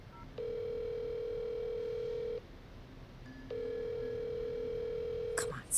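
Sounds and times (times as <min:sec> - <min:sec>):
long electronic phone ring tones: 0:00.1 - 0:02.4, 0:03.5 - 0:05.5.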